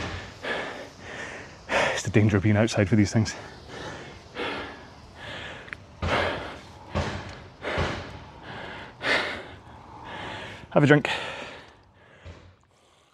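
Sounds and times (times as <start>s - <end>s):
speech: 2.0s - 3.6s, 10.8s - 11.3s
metal dent being hammered out in a garage next door: 6.0s - 8.2s.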